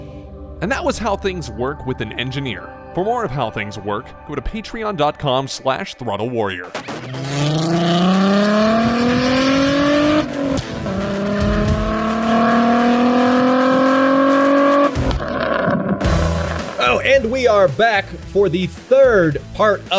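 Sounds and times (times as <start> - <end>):
speech: 0.6 - 7.8, 17.2 - 19.9
crackling exhaust pops: 6.7 - 17.1
Volkswagen VR6 car engine revving hard through gear changes: 6.8 - 17.2.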